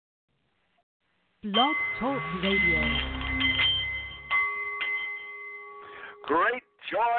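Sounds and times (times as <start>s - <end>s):
speech: 1.4s - 3.2s, 6.3s - 7.1s
Nepalese meditation bowl chiming: 1.5s - 6.4s.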